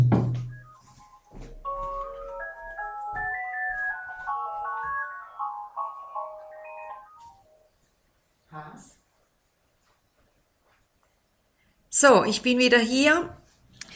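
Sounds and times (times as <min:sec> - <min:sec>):
telephone ringing with a bright melodic electronic ringtone: 0:00.0 - 0:07.5
speech: 0:12.0 - 0:13.4.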